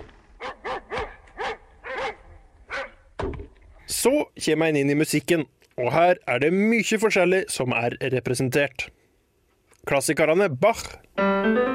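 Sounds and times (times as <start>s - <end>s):
dog barking: 0.4s - 3.1s
speech: 4.0s - 9.0s, 9.8s - 11.7s.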